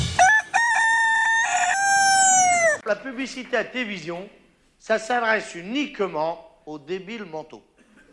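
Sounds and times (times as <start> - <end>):
rooster crowing loudly: 0.1 - 2.8
speech: 3.1 - 7.7.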